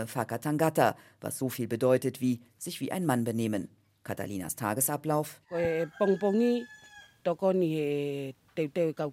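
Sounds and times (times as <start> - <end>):
speech: 0.0 - 9.1
rooster crowing loudly with drawn-out calls: 5.5 - 7.3.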